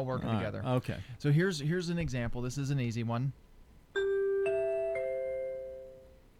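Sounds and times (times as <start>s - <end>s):
speech: 0.0s - 3.5s
TV network three-note chime jingle: 4.0s - 6.2s.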